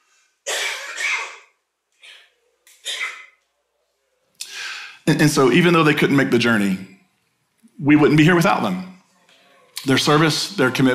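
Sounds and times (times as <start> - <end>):
person coughing: 0.5 - 3.4
speech: 5.1 - 6.9, 7.8 - 8.9, 9.8 - 10.9.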